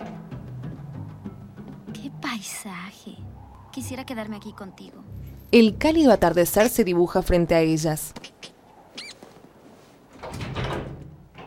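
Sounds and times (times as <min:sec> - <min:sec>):
speech: 0:02.3 - 0:08.2
door swinging open with a rough rumbling sweep: 0:10.1 - 0:11.4.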